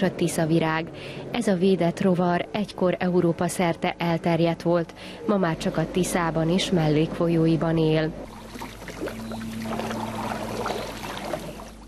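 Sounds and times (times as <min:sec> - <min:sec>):
speech: 0:00.0 - 0:08.3
faint low hum: 0:00.0 - 0:11.8
river water splashing and lapping around rowboats and canoes: 0:06.1 - 0:11.8.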